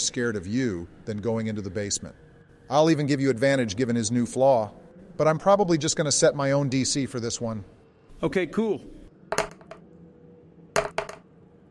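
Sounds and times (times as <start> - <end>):
speech: 0.0 - 9.5
dice clattering across a hard table: 9.3 - 9.8, 10.8 - 11.2.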